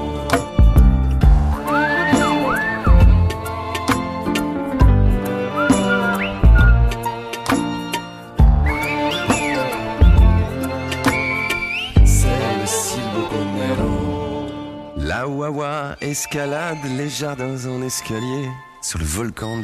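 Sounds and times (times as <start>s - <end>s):
busy musical backing with steady percussion: 0.0s - 12.4s
Silbo-style human whistled melody: 1.2s - 3.6s, 4.3s - 7.2s, 8.4s - 13.4s, 14.5s - 19.6s
speech: 16.2s - 19.6s.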